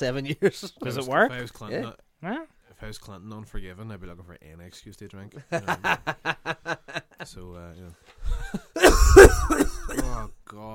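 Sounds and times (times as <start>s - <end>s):
speech: 0.0s - 10.7s
laughter: 5.4s - 7.4s
cough with rough throat-clearing: 8.8s - 10.4s.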